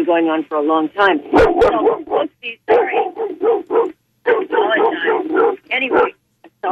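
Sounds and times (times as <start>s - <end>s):
speech: 0.0s - 6.6s
dog barking and yipping: 1.3s - 6.6s.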